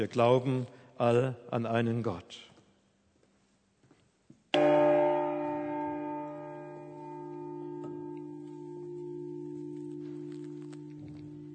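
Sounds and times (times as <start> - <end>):
speech: 0.0 - 2.5
large deep church bell struck and ringing: 4.6 - 11.5.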